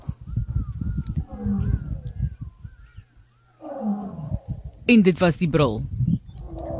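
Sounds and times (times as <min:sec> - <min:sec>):
lions roaring: 0:01.2 - 0:02.2, 0:03.6 - 0:04.6, 0:06.4 - 0:06.7
speech: 0:04.9 - 0:06.0.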